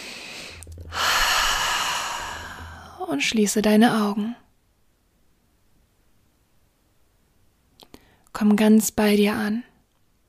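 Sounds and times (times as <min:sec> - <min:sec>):
deep breathing in and out during a guided relaxation exercise: 0:00.0 - 0:03.1
speech: 0:03.1 - 0:04.4, 0:08.4 - 0:09.7.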